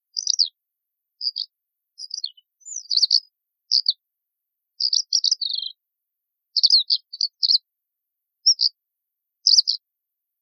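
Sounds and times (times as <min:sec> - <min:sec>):
Eurasian skylark song: 0:00.0 - 0:04.1, 0:04.7 - 0:05.9, 0:06.5 - 0:07.7, 0:08.4 - 0:08.8, 0:09.4 - 0:10.4.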